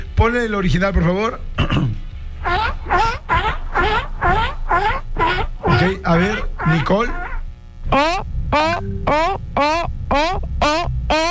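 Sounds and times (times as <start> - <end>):
low rumble: 0.0 - 11.2
speech: 0.2 - 2.0, 5.8 - 7.2, 7.9 - 11.2
human voice imitating a seal's barking call: 2.4 - 11.2.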